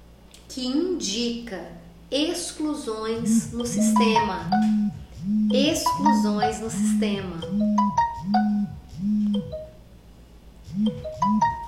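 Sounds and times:
speech: 0.6 - 9.6
phone electronic ringtone for an incoming call: 3.3 - 9.8, 10.8 - 11.6.

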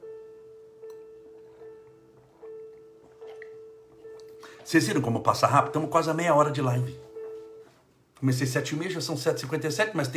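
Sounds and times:
water trickling and splashing into a glass: 2.4 - 3.7
speech: 4.7 - 7.1, 8.2 - 10.1.

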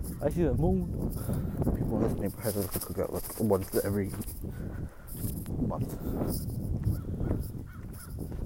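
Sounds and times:
speech: 0.2 - 7.5
crows cawing: 6.9 - 8.3.

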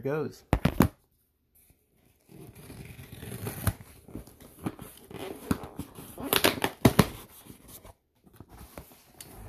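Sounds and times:
tape ripping off a cardboard box: 2.4 - 7.2.

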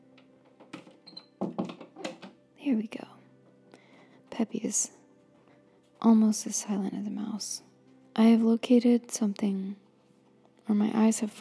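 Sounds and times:
door being pushed shut: 0.4 - 2.4
speech: 2.6 - 3.2, 4.4 - 5.0, 6.0 - 9.8, 10.7 - 11.4.

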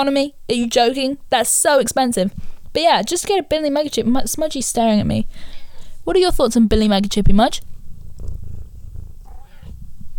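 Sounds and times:
speech: 0.0 - 7.7
cat purring: 7.6 - 10.1
cat meowing softly: 9.2 - 9.8.

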